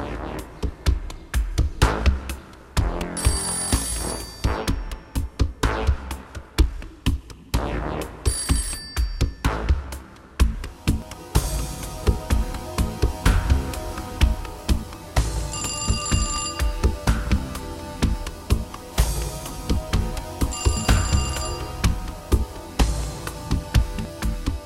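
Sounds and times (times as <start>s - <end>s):
music: 0.0s - 24.6s
telephone bell ringing: 3.2s - 4.8s, 8.3s - 9.5s, 15.4s - 17.1s, 20.4s - 22.0s.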